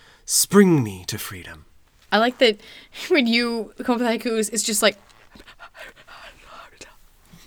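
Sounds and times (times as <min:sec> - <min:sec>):
man whispering and mouthing words while composing a haiku: 0:00.3 - 0:01.7, 0:05.6 - 0:07.0
speech: 0:00.3 - 0:06.2.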